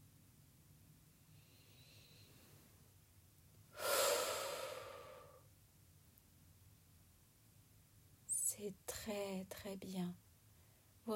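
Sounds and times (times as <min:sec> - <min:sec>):
slow guided breath, soft airy exhale: 0:01.3 - 0:02.7, 0:03.8 - 0:05.5
speech: 0:08.6 - 0:10.2.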